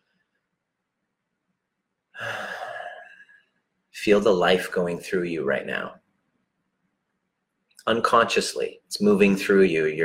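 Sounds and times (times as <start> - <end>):
deep diaphragmatic belly breath exhale during a guided breathing exercise: 2.2 - 3.4
speech: 4.0 - 6.0, 7.9 - 10.0.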